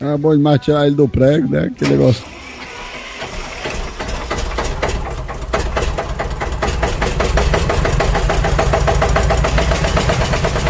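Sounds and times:
speech: 0.0 - 2.4
old car engine cranking, starting and idling: 1.8 - 10.6.

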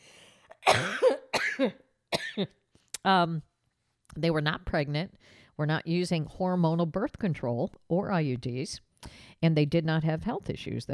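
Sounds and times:
harsh coughs: 0.6 - 2.6
speech: 1.6 - 1.8, 2.4 - 3.5, 4.2 - 10.9.

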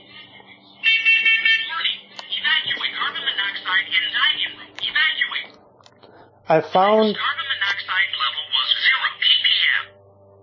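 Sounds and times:
carbon monoxide detector shrill electronic alarm tone: 0.8 - 2.1
carbon monoxide detector synthesized recorded voice warning: 1.2 - 5.6, 6.5 - 9.9
speech: 6.5 - 7.4.

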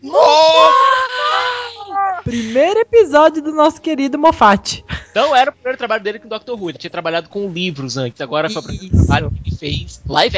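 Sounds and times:
excited high-pitched screaming: 0.0 - 2.3
speech: 3.0 - 10.3.

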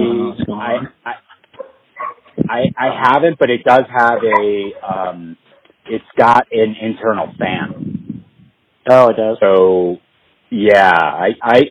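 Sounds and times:
speech: 0.6 - 1.2, 2.5 - 7.8, 8.8 - 11.6
dogs barking excitedly: 0.7 - 2.4, 3.9 - 5.7
dogs whimpering: 4.0 - 5.0.

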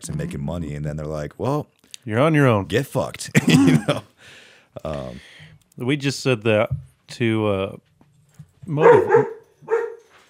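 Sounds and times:
speech: 0.0 - 7.9, 8.7 - 9.4
stirred-up dogs barking: 8.8 - 10.1.

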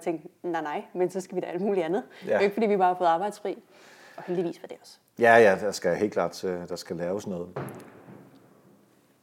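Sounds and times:
speech: 0.0 - 7.9
distant fireworks being set off: 7.6 - 8.9.

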